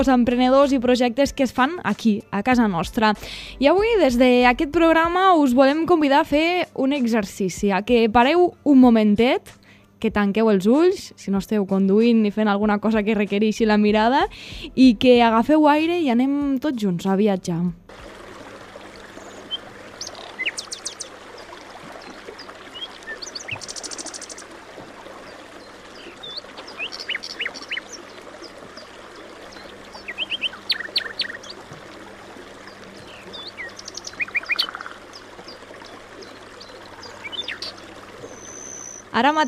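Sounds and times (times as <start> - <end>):
speech: 0.0 - 18.1, 39.2 - 39.4
birds chirping by a river: 17.9 - 39.4
flowing river water: 17.9 - 39.4.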